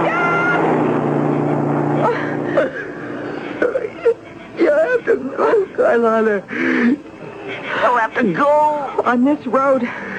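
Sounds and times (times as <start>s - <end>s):
car driving past on road: 0.0s - 3.6s
speech: 5.4s - 7.1s, 7.8s - 10.0s.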